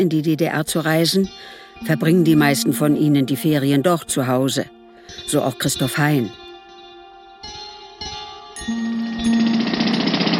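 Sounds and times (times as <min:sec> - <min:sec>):
speech: 0:00.0 - 0:06.4
low grinding hum: 0:08.6 - 0:10.3
jackhammers drilling trench in street: 0:08.7 - 0:10.3.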